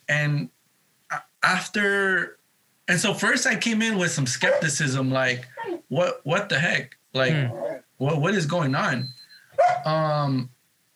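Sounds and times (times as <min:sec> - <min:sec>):
speech: 0:00.1 - 0:10.5
puppy barking: 0:04.4 - 0:04.7, 0:05.5 - 0:05.9, 0:07.5 - 0:07.9, 0:09.6 - 0:09.9.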